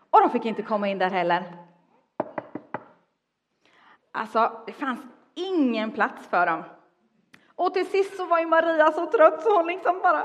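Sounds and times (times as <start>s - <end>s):
speech: 0.2s - 1.6s, 4.2s - 6.8s, 7.6s - 10.2s
knocking on a door: 2.2s - 2.9s.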